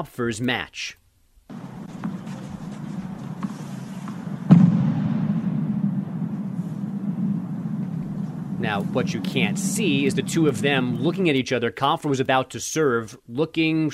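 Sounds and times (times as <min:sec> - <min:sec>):
speech: 0:00.0 - 0:01.0, 0:08.6 - 0:13.9
fighter jet boom overhead during a tennis match in Paris: 0:01.5 - 0:11.1
steady low outdoor rumble: 0:01.5 - 0:11.2.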